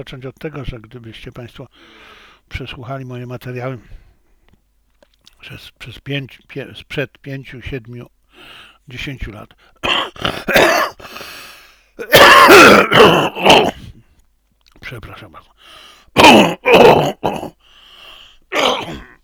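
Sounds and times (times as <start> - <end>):
speech: 0.0 - 4.0, 5.4 - 11.1, 14.9 - 17.6
throat clearing from tired worn-out lungs: 9.8 - 11.2, 12.0 - 14.0, 16.2 - 17.6, 18.5 - 19.2
harsh coughing from tired worn-out lungs: 9.8 - 13.9, 16.1 - 17.6, 18.5 - 19.2.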